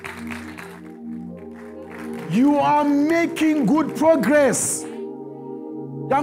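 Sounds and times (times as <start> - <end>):
church audience clapping hands: 0.0 - 4.7
sustained instrumental chords: 0.0 - 6.2
speech: 2.3 - 4.9.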